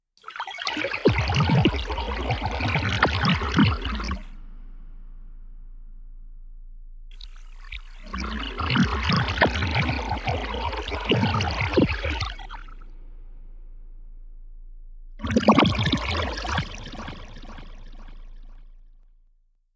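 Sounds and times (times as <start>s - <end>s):
gurgling flowing water in nature: 0.2s - 4.4s, 7.1s - 13.0s, 15.2s - 18.8s.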